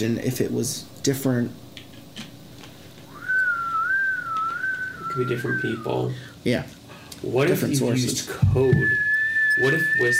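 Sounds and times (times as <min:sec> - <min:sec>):
speech: 0:00.0 - 0:01.6, 0:05.2 - 0:09.0, 0:09.6 - 0:10.1
sustained straight-tone human whistle: 0:03.1 - 0:06.1, 0:08.7 - 0:10.1.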